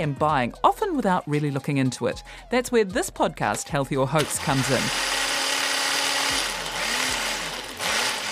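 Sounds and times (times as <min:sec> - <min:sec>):
speech: 0:00.0 - 0:05.2
blender grinding breakfast fruit and vegetables: 0:04.2 - 0:08.2.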